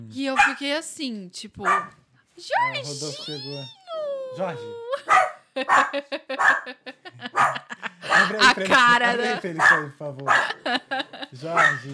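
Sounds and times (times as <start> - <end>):
speech: 0.1 - 11.9
dog barking in sharp high yips: 0.3 - 0.6, 1.6 - 2.0, 5.1 - 8.4, 9.5 - 10.6, 11.5 - 11.9
laughter: 4.4 - 11.9.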